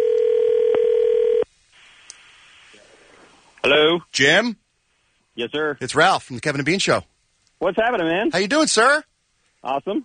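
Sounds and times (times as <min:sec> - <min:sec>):
outgoing phone call electronic ring tone: 0:00.0 - 0:01.4
faint phone line hiss: 0:01.1 - 0:10.0
speech: 0:04.0 - 0:04.6, 0:05.4 - 0:10.0.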